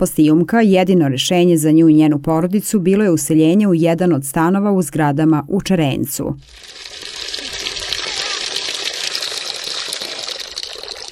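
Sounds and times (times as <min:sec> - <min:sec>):
speech: 0:00.0 - 0:07.2
water gushing from an outdoor water tap in Čerenac: 0:06.4 - 0:11.1.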